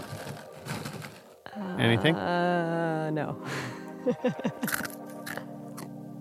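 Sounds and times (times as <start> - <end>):
crunchy chickpeas being chewed: 0.0 - 1.3, 4.6 - 5.9
laughter: 1.7 - 2.8, 3.5 - 4.9
speech: 1.8 - 4.9.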